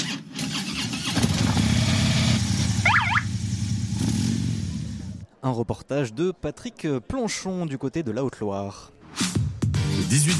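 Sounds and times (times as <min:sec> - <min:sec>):
motorcycle engines of a group of bikers starting and revving in Haute-Loire: 0:00.5 - 0:05.2
speech: 0:05.4 - 0:09.4, 0:10.0 - 0:10.3.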